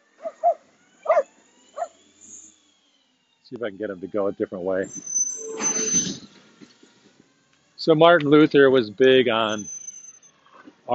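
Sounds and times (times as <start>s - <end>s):
dog barking: 0.2s - 2.0s
speech: 3.5s - 5.7s, 7.8s - 9.8s.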